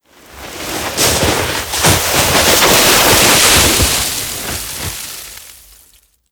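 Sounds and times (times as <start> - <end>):
snowmobile with icepick skidding: 0.0 - 6.0.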